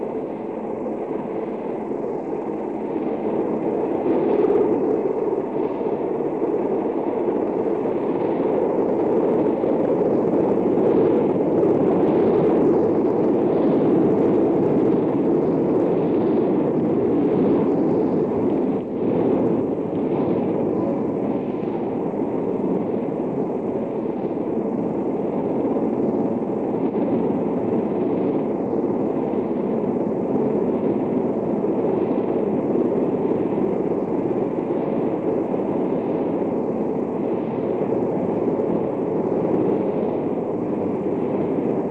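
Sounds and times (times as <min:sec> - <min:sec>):
recovery helicopter engine and rotors landing on a ship's deck: 0:00.0 - 0:41.8.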